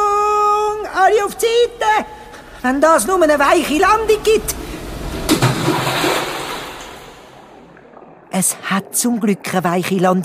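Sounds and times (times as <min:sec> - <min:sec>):
speech: 0:01.1 - 0:04.6, 0:08.4 - 0:10.2
churning bubbling water in a well: 0:01.2 - 0:10.2
splash of something dropping into a well: 0:05.2 - 0:08.0.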